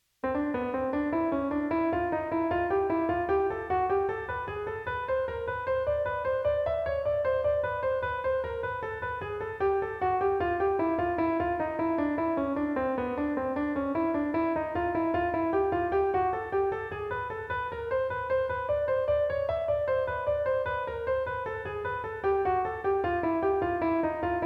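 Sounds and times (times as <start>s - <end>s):
jazz piano playing major scale tone embellishment: 0.0s - 24.4s.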